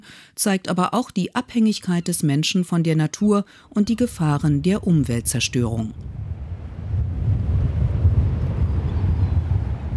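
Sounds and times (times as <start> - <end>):
speech: 0.0 - 6.2
strong wind buffeting the microphone at the seashore: 4.0 - 9.9.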